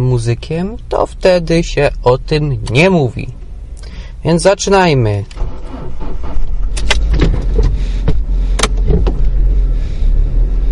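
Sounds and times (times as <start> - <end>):
speech: 0.0 - 3.4, 4.2 - 6.0
car engine rumble pulling out of a parking lot: 0.0 - 10.7
sharp clicks and light rattles: 5.2 - 9.4.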